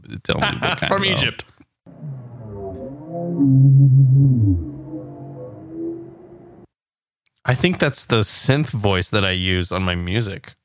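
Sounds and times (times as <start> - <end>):
speech: 0.1 - 1.5, 3.4 - 4.7, 7.4 - 10.6
whale call: 1.9 - 6.8.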